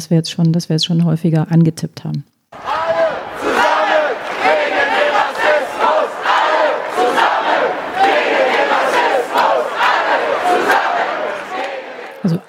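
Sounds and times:
speech: 0.0 - 2.7
protest crowd chanting at anti-racism demonstration: 2.5 - 12.4.

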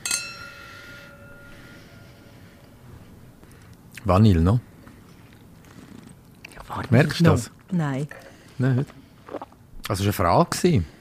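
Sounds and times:
wine glasses clinking in a toast: 0.0 - 2.8
speech: 4.0 - 4.7, 6.8 - 9.0, 9.9 - 11.0.

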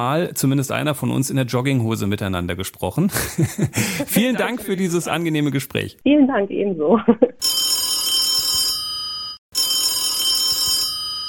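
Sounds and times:
speech: 0.0 - 7.6
laughter: 3.1 - 5.3
telephone ringing with bright rapid trilling bell: 7.4 - 11.2.

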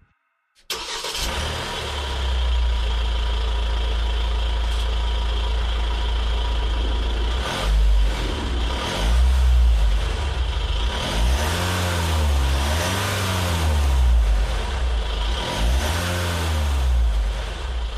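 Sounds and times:
diesel van engine idling and revving: 0.7 - 17.9.

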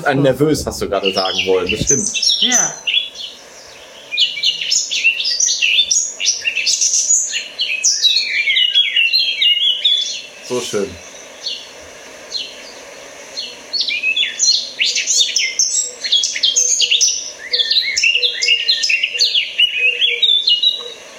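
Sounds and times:
person murmuring: 0.0 - 2.8
speech: 0.0 - 3.0, 10.5 - 11.1
blackbird-like songbird singing: 0.0 - 21.1.

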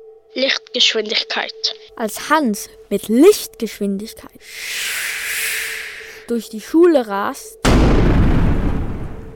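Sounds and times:
speech: 0.4 - 5.2, 6.3 - 7.6
loud explosion with a deep rumbling boom: 7.6 - 9.3.

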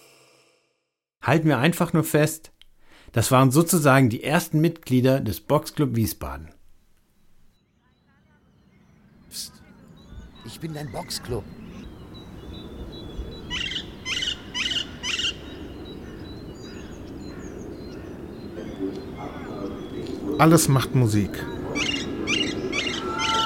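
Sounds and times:
speech: 1.2 - 6.6, 9.3 - 9.6, 10.4 - 11.6, 20.4 - 21.6
bright repeated bird chirps in a park: 6.6 - 23.4.

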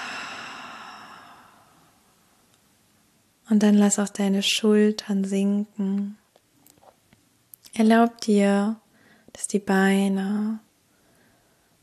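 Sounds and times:
deep breath exhaled slowly through the open mouth during a guided relaxation exercise: 0.0 - 1.9
speech: 3.5 - 6.2, 7.8 - 8.8, 9.4 - 10.6.

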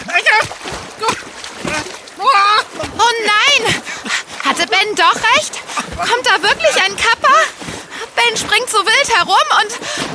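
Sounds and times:
water splashing: 0.0 - 10.1
person exclaiming: 1.0 - 2.8
speech: 4.9 - 7.5, 8.2 - 10.1.

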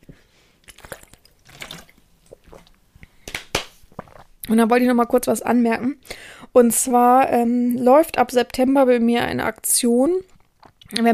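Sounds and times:
water sloshing: 0.6 - 2.8
person sipping water: 0.6 - 3.2, 3.8 - 4.5, 10.3 - 11.0
speech: 4.5 - 10.3, 10.9 - 11.1.

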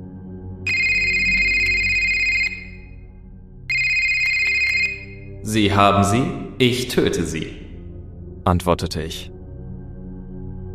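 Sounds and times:
mobile phone ringing: 0.7 - 2.9, 3.7 - 6.2
speech: 5.5 - 7.6, 8.5 - 9.4.

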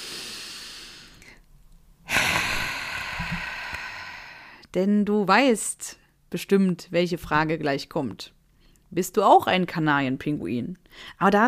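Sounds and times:
deep breath in and out: 0.0 - 4.7
speech: 4.7 - 11.4.

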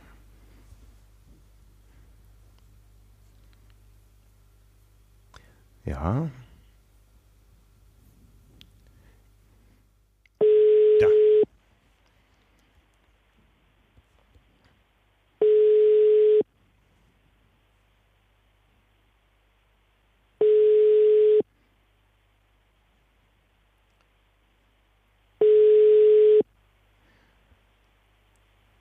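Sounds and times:
faint hiss: 0.0 - 28.8
speech: 5.8 - 6.4
telephone ringback tone on an unanswered call: 10.4 - 11.4, 15.4 - 16.4, 20.4 - 21.4, 25.4 - 26.4.

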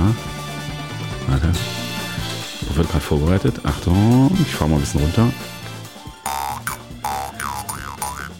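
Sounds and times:
speech: 1.3 - 1.8, 2.8 - 5.6
jaw harp twanging in a rhythmic bouncy pattern: 6.3 - 8.3.

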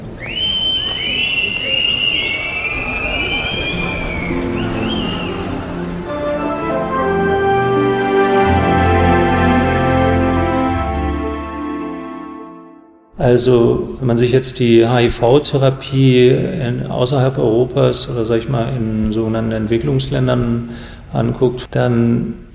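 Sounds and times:
shrill two-finger whistling by protesters: 0.0 - 5.8
murmuring voices: 0.0 - 7.5
dense steady crowd din with sustained tones: 0.0 - 12.4
speech: 13.3 - 22.5.

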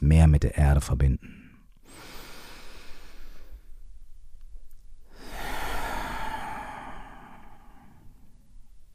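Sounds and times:
speech: 0.0 - 2.1
slow breathing during a guided relaxation exercise: 1.2 - 3.9, 5.0 - 8.8.

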